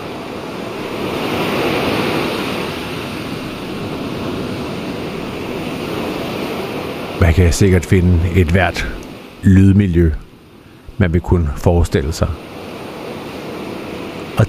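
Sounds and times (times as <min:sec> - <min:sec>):
ocean surf: 0:00.0 - 0:14.4
windy hiss: 0:00.0 - 0:14.4
speech: 0:07.4 - 0:10.2, 0:11.0 - 0:12.5.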